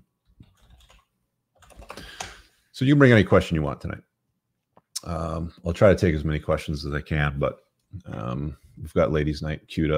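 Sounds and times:
typing on a battery-powered computer keyboard: 0.4s - 2.4s
speech: 2.8s - 4.1s, 5.0s - 9.9s.

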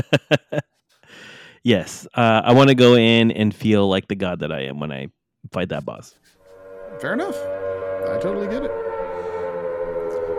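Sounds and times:
laughter: 0.0s - 0.6s
speech: 0.0s - 0.6s, 1.6s - 6.3s, 7.0s - 7.6s, 8.2s - 8.8s
civil defense siren wailing: 6.4s - 10.3s.

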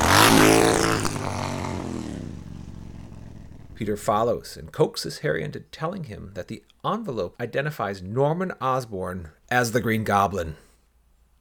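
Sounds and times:
motorcycle engine revving and pulling away: 0.0s - 4.4s
speech: 3.8s - 10.6s.

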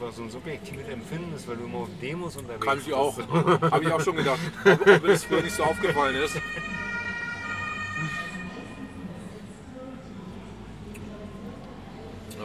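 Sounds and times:
speech: 0.0s - 6.9s
dense background of voices: 0.0s - 12.4s
laughter: 2.8s - 8.8s
ambulance siren wailing: 4.6s - 9.5s.

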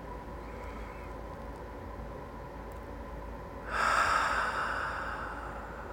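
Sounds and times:
deep breath in through the nose during a guided meditation: 3.7s - 5.9s.

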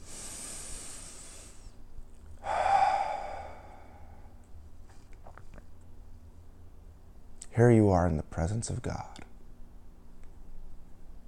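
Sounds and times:
deep meditative breathing in and out during guided meditation: 0.0s - 4.6s
speech: 7.6s - 9.3s.

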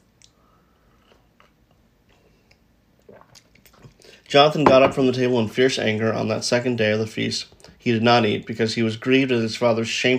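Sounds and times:
person sipping a drink: 0.2s - 4.3s
soft wet mouth and lip noises: 1.0s - 4.1s
person swallowing: 3.0s - 4.0s
speech: 4.3s - 10.1s.

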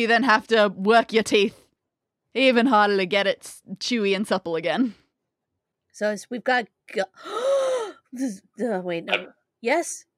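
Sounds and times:
speech: 0.0s - 1.6s, 2.3s - 5.0s, 6.0s - 10.1s
sharp drawn-out gasp: 7.2s - 8.0s
breathy intake: 7.2s - 8.1s.

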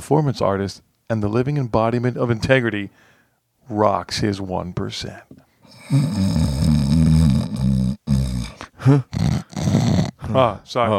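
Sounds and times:
speech: 0.1s - 6.7s, 8.8s - 10.9s
loud rumbling snoring: 5.7s - 10.2s.

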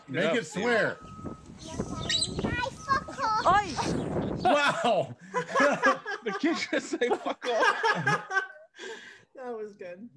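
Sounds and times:
speech: 0.1s - 2.8s, 3.4s - 10.1s
parrot chirping and squawking: 1.9s - 3.8s
laughter: 3.7s - 8.8s.

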